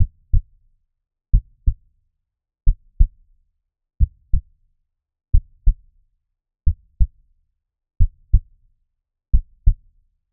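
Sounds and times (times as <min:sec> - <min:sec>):
normal heart sound: 0:00.0 - 0:00.4, 0:01.4 - 0:01.8, 0:04.0 - 0:04.4, 0:05.3 - 0:05.8, 0:06.7 - 0:07.1, 0:08.0 - 0:08.4, 0:09.3 - 0:09.8.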